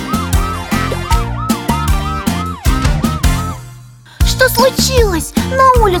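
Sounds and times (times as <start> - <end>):
fire engine siren wailing: 0.0 - 3.6
loud thumping musical beat with bass and drums: 0.0 - 5.9
speech: 4.8 - 5.9.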